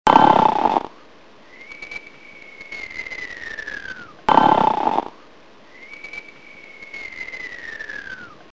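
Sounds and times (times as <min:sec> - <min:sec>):
person snoring: 0:00.1 - 0:01.0, 0:04.3 - 0:05.2.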